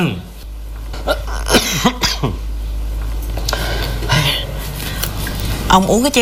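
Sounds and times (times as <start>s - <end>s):
speech: 0.0s - 0.3s, 5.7s - 6.2s
low hum: 0.0s - 6.2s
harsh raspy cough: 1.0s - 2.5s.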